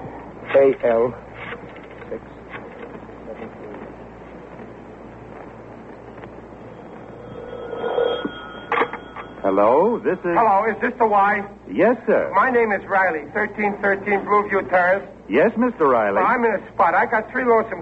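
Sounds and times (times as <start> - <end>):
speech: 0.6 - 1.3, 2.1 - 2.3, 9.5 - 17.8
steady phone tone: 6.6 - 10.1
telephone dialed and ringing: 6.8 - 10.0.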